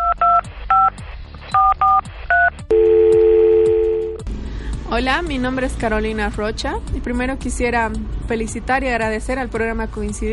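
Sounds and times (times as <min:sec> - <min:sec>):
touch-tone telephone dialing beeps: 0:00.0 - 0:00.9, 0:01.5 - 0:04.2
telephone ringing tone on the line: 0:02.7 - 0:04.2
speech: 0:05.0 - 0:10.3.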